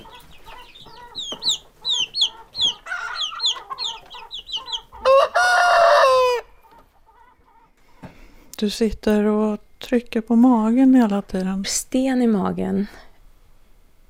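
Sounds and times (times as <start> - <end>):
chickens clucking: 0.0 - 8.4
rooster crowing: 2.6 - 4.0, 4.6 - 6.6
speech: 8.6 - 13.0.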